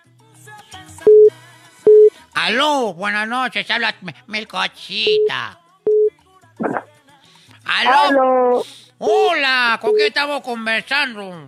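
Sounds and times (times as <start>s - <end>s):
faint music: 0.0s - 11.4s
electronic telephone line tones for incoming call: 1.1s - 1.3s, 1.9s - 2.1s, 5.1s - 5.3s, 5.9s - 6.8s
speech: 2.4s - 5.6s, 7.7s - 11.4s
faint chatter: 7.8s - 8.9s.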